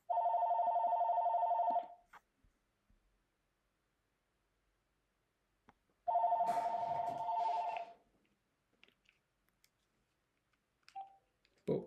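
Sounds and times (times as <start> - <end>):
telephone ringing with electronic trill: 0.1 - 2.0, 6.1 - 8.0.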